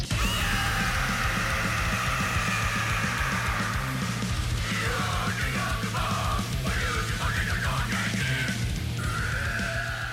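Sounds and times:
cartoon character screaming and growling a heavy metal song in a karaoke box: 0.0s - 5.4s, 9.0s - 10.1s
loud dense heavy metal backing music in a karaoke box: 0.0s - 10.1s.

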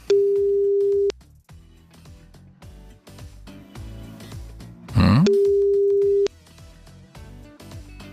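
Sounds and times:
telephone ringback tone from an outgoing call: 0.0s - 1.1s, 5.0s - 6.3s
quiet music: 0.0s - 8.1s
short grunt: 4.9s - 5.3s.

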